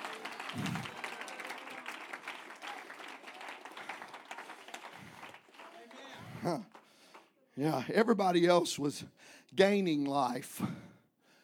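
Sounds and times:
congregation clapping hands: 0:00.0 - 0:07.4
speech: 0:06.4 - 0:06.8, 0:07.6 - 0:10.9.

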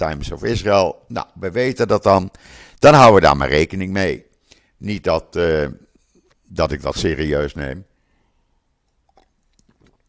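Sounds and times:
speech: 0:00.0 - 0:05.8, 0:06.5 - 0:07.9
person sipping water: 0:08.7 - 0:10.0
soft mouth and swallowing noises: 0:08.8 - 0:10.0.

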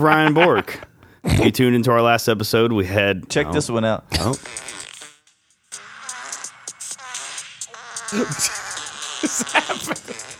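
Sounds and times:
laughter: 0:00.0 - 0:01.6, 0:08.1 - 0:10.3
speech: 0:00.0 - 0:04.8, 0:08.1 - 0:08.6
drawn-out buzzy fart: 0:04.1 - 0:10.3.

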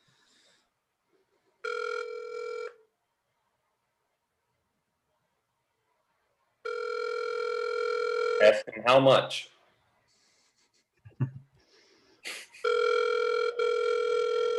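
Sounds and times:
phone line ringing on an outgoing call: 0:01.6 - 0:02.8, 0:06.6 - 0:08.6, 0:12.6 - 0:14.5
speech: 0:08.4 - 0:09.5.

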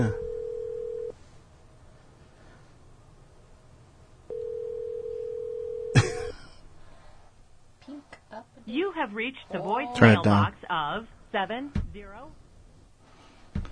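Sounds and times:
speech: 0:00.0 - 0:00.2, 0:09.0 - 0:12.4
quiet telephone ringback tone: 0:00.0 - 0:01.1, 0:04.3 - 0:06.0.

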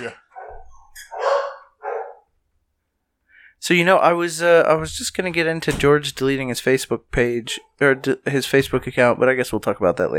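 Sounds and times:
speech: 0:00.0 - 0:00.2, 0:03.6 - 0:10.1
dogs barking at home: 0:00.3 - 0:02.3.

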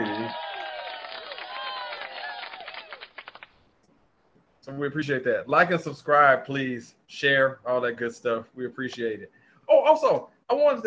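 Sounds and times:
crowd cheering: 0:00.0 - 0:03.5
applause sound effect: 0:00.0 - 0:03.7
speech: 0:04.7 - 0:10.8.

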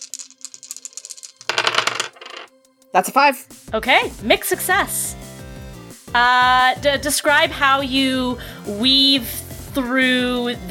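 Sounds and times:
three dice rattling: 0:00.0 - 0:02.5
speech: 0:02.9 - 0:05.1, 0:06.1 - 0:10.6.

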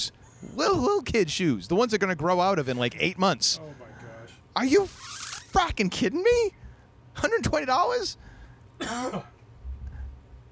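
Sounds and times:
speech: 0:00.0 - 0:03.9, 0:04.6 - 0:06.6, 0:07.2 - 0:08.2, 0:08.8 - 0:09.3
person coughing: 0:08.8 - 0:09.4
quiet low rumble: 0:09.6 - 0:10.4.

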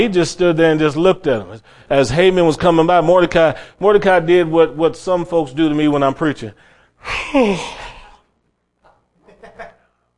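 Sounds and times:
speech: 0:00.0 - 0:07.9
person performing exaggerated yawn: 0:07.0 - 0:08.2.

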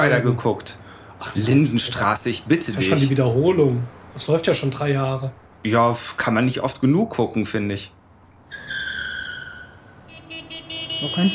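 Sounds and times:
speech: 0:00.0 - 0:08.0, 0:11.0 - 0:11.3
car tires squealing: 0:08.5 - 0:11.3.

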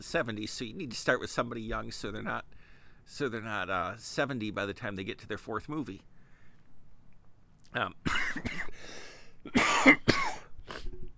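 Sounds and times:
speech: 0:00.0 - 0:06.1, 0:07.7 - 0:10.2
harsh morning coughs: 0:08.0 - 0:11.0.

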